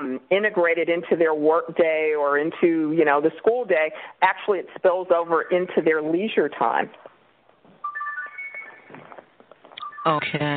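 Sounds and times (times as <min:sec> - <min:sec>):
speech: 0:00.2 - 0:07.1, 0:10.0 - 0:10.5
mobile phone ringtone chiming in clear electronic tones: 0:07.8 - 0:09.2, 0:09.8 - 0:10.5.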